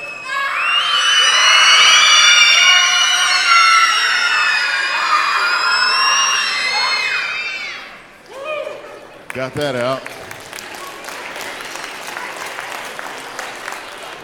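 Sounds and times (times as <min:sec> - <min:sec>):
crowd of children screaming and cheering: 0:00.0 - 0:08.1
speech: 0:09.4 - 0:10.2.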